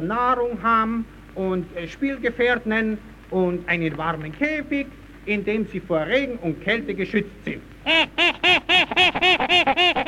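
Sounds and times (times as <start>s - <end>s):
speech: 0.0s - 10.0s
small monkey calling: 7.9s - 10.0s.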